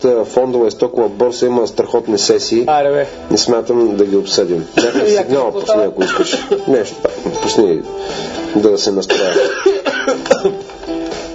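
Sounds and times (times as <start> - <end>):
speech: 0.0 - 10.8
loud harsh hacking coughing: 4.7 - 5.2, 6.0 - 6.7, 9.1 - 10.6.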